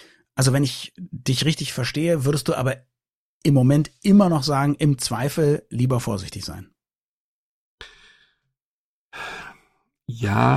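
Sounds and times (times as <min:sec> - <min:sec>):
speech: 0:00.4 - 0:06.7, 0:10.1 - 0:10.5
deliberately theatrical heavy breathing: 0:07.8 - 0:08.4, 0:09.1 - 0:09.8.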